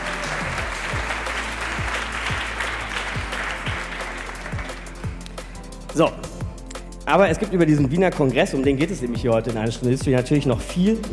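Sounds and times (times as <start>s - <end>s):
large audience in Heidelberg applauding after a quiz: 0.0s - 5.4s
low rhythmic thumping: 0.0s - 11.1s
speech: 6.0s - 6.3s, 7.1s - 11.1s.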